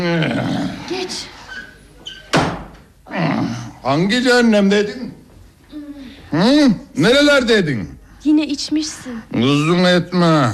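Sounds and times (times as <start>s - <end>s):
speech: 0.0s - 1.4s, 3.8s - 5.2s, 6.3s - 10.5s
door squeaking as it is pulled open: 1.5s - 2.7s
door shutting with a heavy thud: 2.1s - 2.9s.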